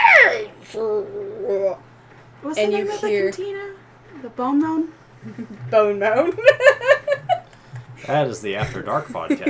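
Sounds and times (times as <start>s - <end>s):
voice imitating a gnarled screeching grinding metallic sound: 0.0s - 0.6s
speech: 2.4s - 6.7s, 8.0s - 9.4s
laughter: 5.2s - 9.4s.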